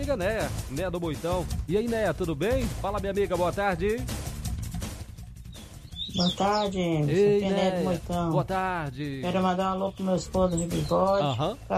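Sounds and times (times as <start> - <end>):
speech: 0.0 - 4.2, 6.2 - 11.7
small birds singing: 4.4 - 11.7.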